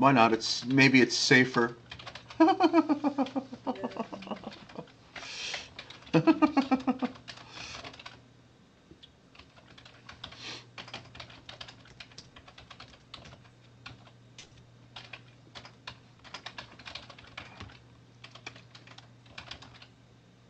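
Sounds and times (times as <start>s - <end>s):
speech: 0.0s - 4.3s
low constant hum: 0.0s - 20.4s
typing on a computer keyboard: 1.8s - 2.5s, 4.3s - 8.2s, 9.3s - 19.9s
laughter: 2.4s - 4.9s, 6.1s - 7.2s.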